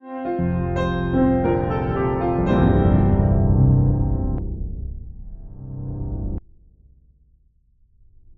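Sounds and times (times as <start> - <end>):
grand piano keys: 0.3 - 6.4.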